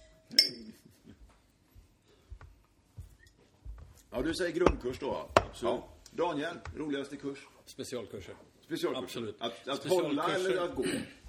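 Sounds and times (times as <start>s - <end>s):
glasses clinking in a toast: 0.0s - 0.8s
speech: 4.1s - 11.2s.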